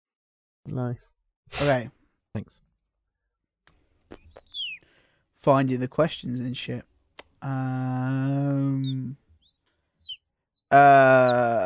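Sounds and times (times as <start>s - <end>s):
speech: 0.7s - 2.6s, 5.4s - 9.2s, 10.7s - 11.6s
person imitating a baby seagull: 7.8s - 9.2s, 10.0s - 11.6s.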